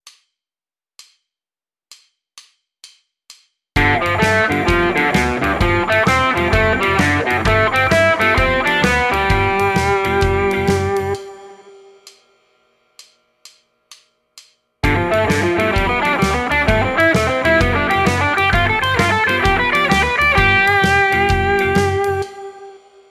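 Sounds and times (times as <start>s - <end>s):
guitar playing blues arpeggio triads over G7: 3.8s - 11.2s, 14.8s - 22.7s.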